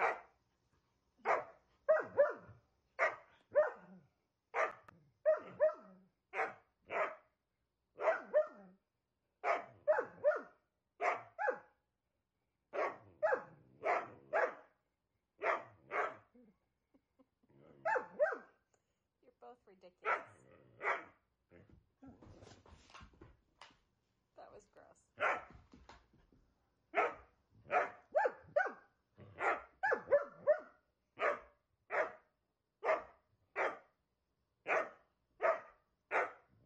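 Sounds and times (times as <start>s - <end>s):
dog barking: 0.0s - 0.4s, 1.2s - 7.3s, 8.0s - 8.7s, 9.4s - 11.8s, 12.7s - 14.8s, 15.4s - 16.3s, 17.8s - 18.6s, 20.0s - 21.2s, 25.2s - 25.6s, 26.9s - 33.9s, 34.6s - 36.5s.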